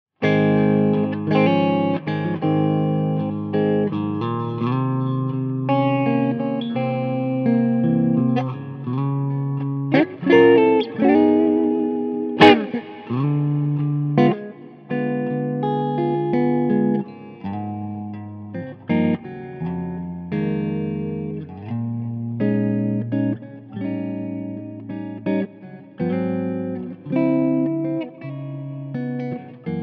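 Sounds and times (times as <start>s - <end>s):
clean breakup Gibson Les Paul Custom: 0.2s - 29.8s.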